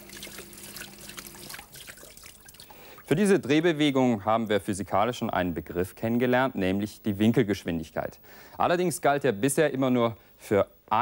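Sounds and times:
small water drips: 0.0 - 3.6
speech: 3.1 - 11.0.

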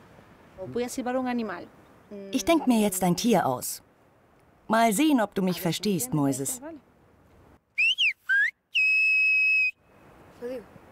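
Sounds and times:
speech: 0.6 - 3.9, 4.7 - 6.9
loud piercing human whistling shaping a word: 7.8 - 9.8.

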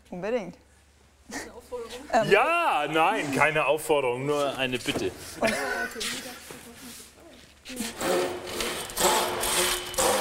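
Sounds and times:
speech: 0.1 - 0.7, 1.3 - 6.6, 7.7 - 8.4
old hand saw cutting through wood: 7.8 - 10.1.

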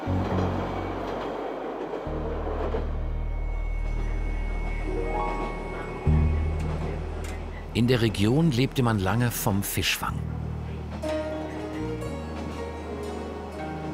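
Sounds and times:
rising tonal whine of train: 0.0 - 9.2
small branch-line train deep engine drone: 0.0 - 13.9
speech: 7.8 - 10.3.

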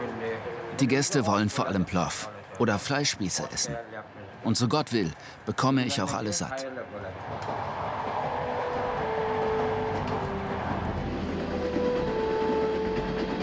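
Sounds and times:
speech: 0.8 - 7.6
train rolling on rails approaching Bukhara, Uzbekistan: 7.1 - 13.4
high tonal squeals from train wheels: 7.7 - 13.4.

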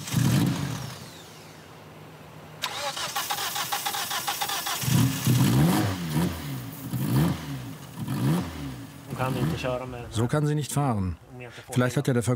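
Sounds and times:
car engine cranking and starting after starter spray: 0.0 - 1.9, 2.6 - 10.3
speech: 9.3 - 12.3.

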